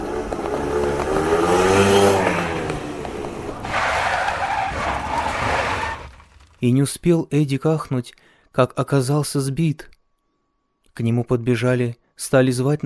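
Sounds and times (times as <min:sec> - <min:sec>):
motorcycle engine speeding around a bend in the road: 0:00.0 - 0:04.0
motorcycle tires screeching in a skid: 0:00.3 - 0:06.6
speech: 0:06.6 - 0:09.9, 0:11.0 - 0:12.8.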